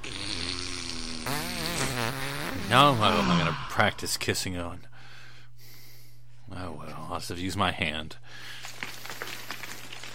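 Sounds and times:
long loud fart: 0.0 - 3.5
speech: 2.7 - 4.9, 6.6 - 8.6.

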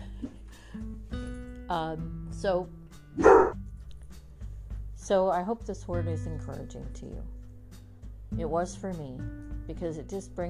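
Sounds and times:
speech: 1.7 - 3.6, 5.1 - 7.4, 8.3 - 10.4
dog barking: 3.2 - 3.6.

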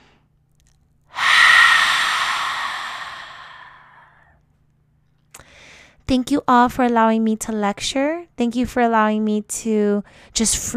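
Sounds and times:
deep breath released through an open mouth after a yoga session: 1.2 - 4.2
speech: 6.1 - 10.7.

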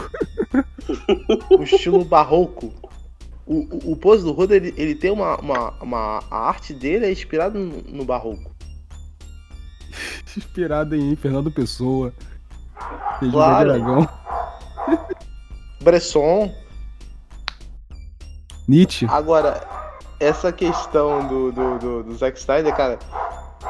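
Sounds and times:
laughter: 0.0 - 2.9, 10.0 - 10.5, 13.2 - 14.1, 14.8 - 15.2
speech: 0.5 - 2.8, 3.5 - 8.5, 9.9 - 14.2, 14.9 - 16.6, 18.7 - 23.4
dog barking and yelping: 1.2 - 2.1, 12.8 - 15.2, 19.4 - 22.0, 22.6 - 23.6.

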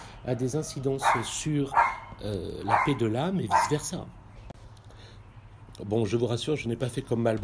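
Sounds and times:
speech: 0.2 - 4.2, 5.8 - 7.4
dog barking: 1.0 - 3.9.

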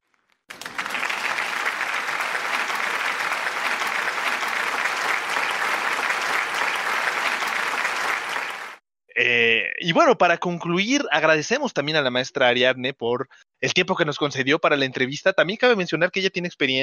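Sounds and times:
applause from a group of people: 0.5 - 8.8
speech: 9.2 - 16.8.

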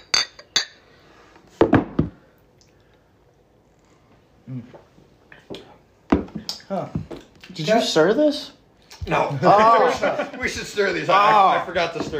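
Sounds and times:
drinking glasses clinking in a toast: 0.0 - 0.8
speech: 4.5 - 5.0, 6.7 - 12.1
laughter: 9.3 - 11.9.

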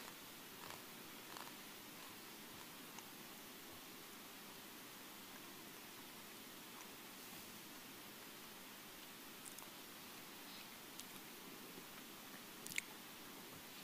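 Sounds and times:
quiet chewing of communion bread: 0.0 - 3.1, 9.0 - 9.8, 10.4 - 13.0
steady hiss: 0.0 - 13.8
soft irregular mouth clicks and squishes: 12.6 - 12.9.

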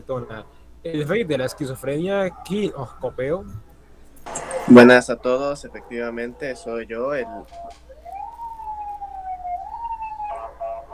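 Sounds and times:
speech: 0.1 - 3.7, 4.7 - 7.8
ambulance siren wailing: 7.0 - 10.9.

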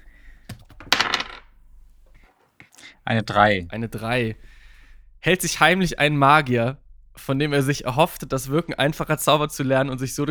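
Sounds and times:
six-sided die rolled on a hard surface: 0.5 - 2.2
speech: 3.0 - 4.6, 5.2 - 10.2.

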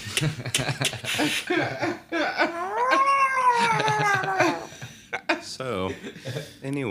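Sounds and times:
speech: 0.2 - 2.8, 3.6 - 4.8, 5.5 - 6.9
breathy laughter-like sounds: 0.2 - 5.4
man imitating a drawn-out wavering cat meow: 2.5 - 4.6.

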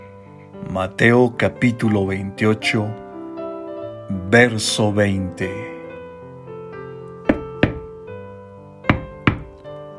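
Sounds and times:
speech: 0.7 - 3.0, 4.1 - 5.7
firm knocking on a gate: 7.3 - 7.9, 8.9 - 9.6.

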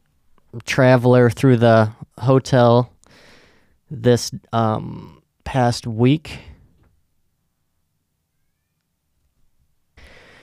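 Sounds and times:
hum: 0.0 - 10.4
speech: 0.5 - 2.9, 3.9 - 6.5
cat meowing in a hallway: 8.3 - 8.8.

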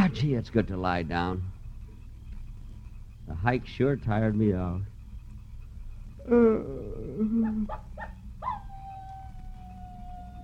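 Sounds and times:
speech: 0.1 - 1.6, 3.3 - 4.9, 6.3 - 8.2
coyote howling and yipping: 6.2 - 10.4.

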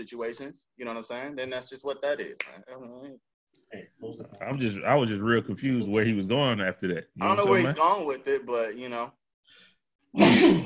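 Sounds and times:
speech: 0.0 - 10.6
single loud harsh breathy sneeze: 10.2 - 10.6.

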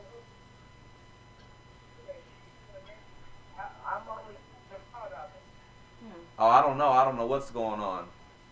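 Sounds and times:
faint electronic hum: 0.0 - 8.4
thin tinny voice over a phone line breaking up: 1.9 - 8.1
speech: 6.4 - 8.2.

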